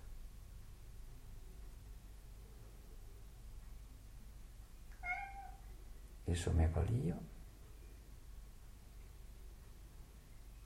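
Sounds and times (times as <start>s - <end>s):
kitten meowing: 4.9s - 5.6s
speech: 6.3s - 7.4s.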